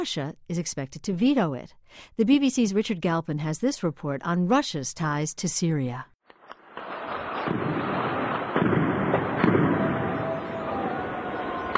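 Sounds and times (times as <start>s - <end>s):
speech: 0.0s - 6.1s
explosions in a city: 6.4s - 11.7s
gunfire in a city: 6.4s - 11.7s.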